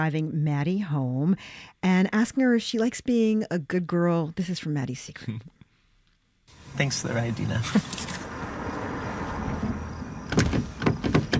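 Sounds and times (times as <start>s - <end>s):
speech: 0.0s - 5.6s, 6.8s - 8.2s
stuck car door being tugged open: 9.5s - 11.3s.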